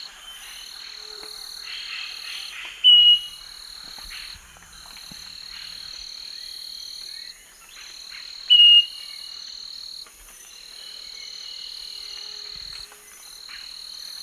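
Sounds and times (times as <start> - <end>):
steady insect drone: 0.0 - 14.2
Scaly-breasted Wren Microcerculus marginatus song of slow pure whistles: 2.8 - 3.4, 8.5 - 9.1.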